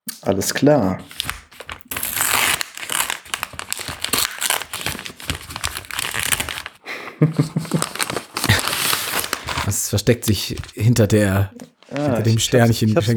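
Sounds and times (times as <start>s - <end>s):
speech: 0.2s - 1.4s, 10.0s - 13.1s
bath additive packet crinkling as it is opened: 1.0s - 6.8s, 7.4s - 11.0s
laughter: 6.8s - 8.8s.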